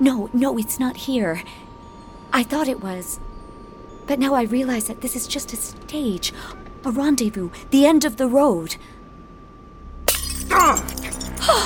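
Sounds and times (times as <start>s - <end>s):
speech: 0.0s - 1.7s, 2.3s - 3.3s, 4.1s - 9.0s
faint steady hum: 0.0s - 11.6s
drinking glass shattering with ringing fragments: 10.1s - 11.6s.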